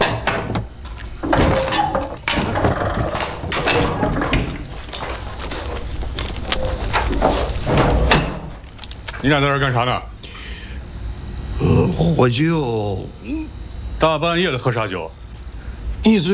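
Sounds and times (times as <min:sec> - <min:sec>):
wooden door opened at night, clattering and knocking: 0:00.0 - 0:08.7
speech: 0:09.2 - 0:10.1, 0:11.8 - 0:15.2, 0:16.0 - 0:16.3.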